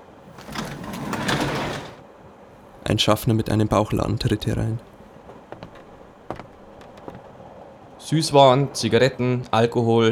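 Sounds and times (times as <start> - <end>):
train compartment door sliding open: 0.3 - 2.0
speech: 2.9 - 4.9, 8.1 - 10.0.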